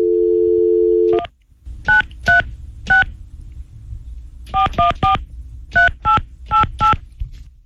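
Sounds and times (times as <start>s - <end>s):
telephone dial tone: 0.0s - 1.3s
low rumble: 1.3s - 7.6s.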